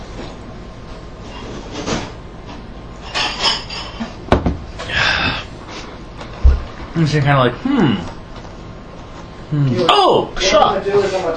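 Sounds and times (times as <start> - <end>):
dishwasher running: 0.0 - 8.0
dishes clattering and clinking: 3.0 - 4.5
speech: 7.0 - 8.2, 9.5 - 11.3.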